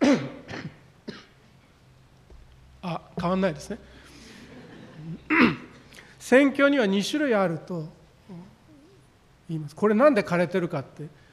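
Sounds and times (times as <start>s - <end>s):
preacher with a hoarse voice coughing: 0.0s - 1.4s, 5.0s - 5.8s
speech: 2.8s - 4.0s, 6.2s - 8.4s, 9.5s - 11.2s
laughter: 4.2s - 5.3s.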